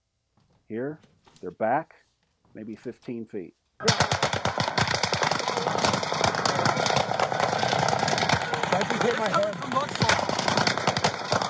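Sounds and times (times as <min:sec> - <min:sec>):
speech: 0:00.7 - 0:04.2, 0:08.8 - 0:10.2
gunfire from several guns at a shooting spot: 0:03.8 - 0:11.4.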